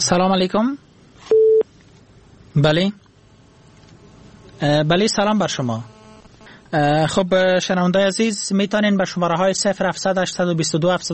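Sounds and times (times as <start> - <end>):
speech: 0.1 - 1.4, 2.6 - 3.0, 4.6 - 6.0, 6.7 - 11.1
steady mid-pitched telephone line beep after a dropped call: 1.3 - 1.6.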